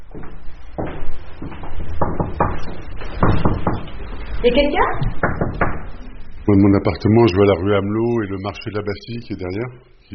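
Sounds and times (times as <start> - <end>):
dull wooden knocks of carriage door: 0.0 - 4.0, 5.0 - 5.9
creaking thuds of heavy carriage door: 0.0 - 6.1
speech: 4.4 - 5.3, 6.5 - 10.1.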